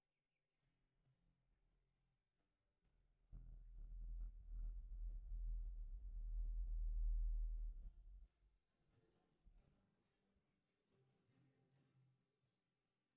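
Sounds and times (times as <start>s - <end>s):
bass stem: 3.2s - 8.3s.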